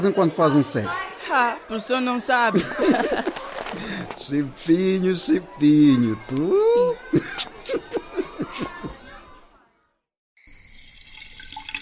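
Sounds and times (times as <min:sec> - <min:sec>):
speech: 0:00.0 - 0:03.4, 0:04.2 - 0:07.5
burst of laughter: 0:02.5 - 0:04.1, 0:07.0 - 0:09.3.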